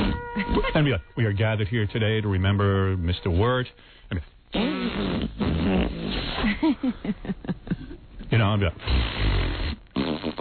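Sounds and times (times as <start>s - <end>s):
speech: 0.4s - 9.3s, 10.0s - 10.3s
person imitating small farts with the mouth: 4.5s - 6.6s, 8.8s - 10.3s.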